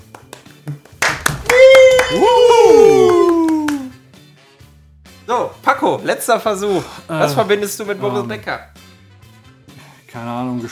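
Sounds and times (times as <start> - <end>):
scattered hand claps: 0.0 - 4.0
speech: 5.3 - 8.8, 10.2 - 10.7.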